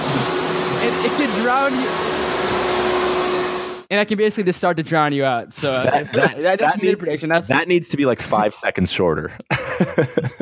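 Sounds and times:
vacuum cleaner roaring with motor whine: 0.0s - 3.9s
speech: 0.8s - 2.6s, 3.9s - 10.4s
laughter: 5.6s - 7.6s, 9.4s - 10.4s.

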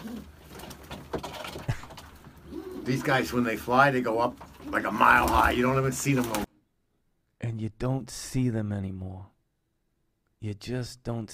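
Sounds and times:
pigeons or doves cooing: 0.0s - 6.5s
speech: 2.9s - 6.5s, 7.6s - 9.3s, 10.4s - 11.3s.

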